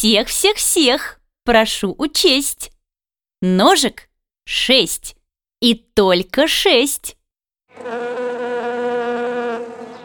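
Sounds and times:
speech: 0:00.0 - 0:02.8, 0:03.4 - 0:07.2, 0:07.8 - 0:08.2
bee laden with nectar buzzing in flight: 0:07.7 - 0:10.0.

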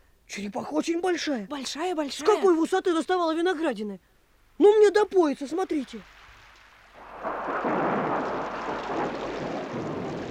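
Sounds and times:
speech: 0:00.3 - 0:06.2
heavy rain downpour: 0:05.4 - 0:10.3.

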